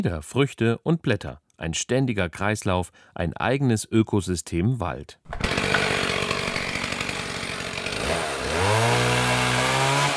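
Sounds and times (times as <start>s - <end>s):
speech: 0.0s - 5.9s
chainsaw felling trees in a forest: 5.3s - 10.1s.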